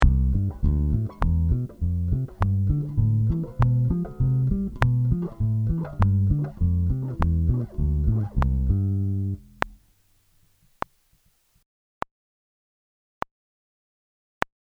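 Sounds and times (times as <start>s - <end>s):
four-finger pizzicato sixteenth notes: 0.0s - 9.8s.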